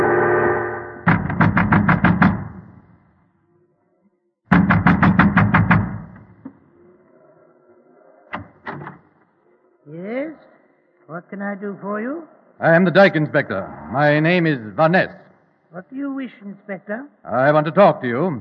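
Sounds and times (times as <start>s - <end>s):
man pounding with heavy fists on the wooden door of a windmill: 1.1s - 2.8s, 4.5s - 6.5s
speech: 11.3s - 18.4s.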